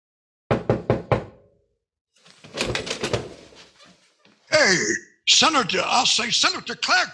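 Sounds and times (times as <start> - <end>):
knuckles knocking on solid oak door: 0.5 - 1.4
speech: 4.7 - 7.1.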